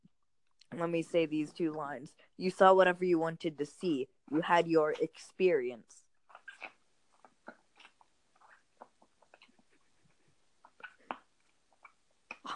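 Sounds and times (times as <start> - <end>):
speech: 0.7 - 6.0
wet chewing on chewy fruit candy: 6.2 - 12.5.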